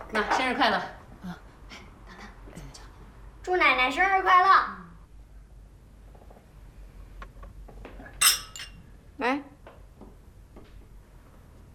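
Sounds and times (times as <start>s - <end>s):
speech: 0.1s - 1.4s, 3.5s - 4.8s, 9.2s - 9.5s
red-wine glasses clinking in a family birthday toast: 8.2s - 8.8s.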